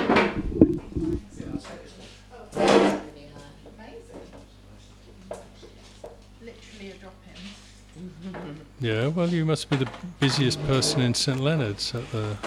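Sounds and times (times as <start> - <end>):
low hum: 0.0 - 1.6
wooden chair scraping and knocking as pulled up to sit: 0.0 - 1.6, 10.4 - 11.1
speech: 8.8 - 12.4.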